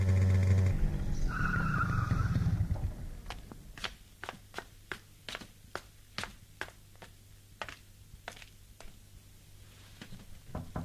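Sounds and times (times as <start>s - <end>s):
motorcycle speeding through quiet late-night streets: 0.0s - 3.5s.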